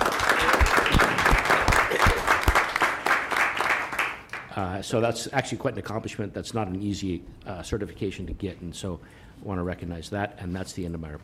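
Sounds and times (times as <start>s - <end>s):
room full of people clapping for a clerk's certification: 0.0s - 4.5s
speech: 4.6s - 11.2s.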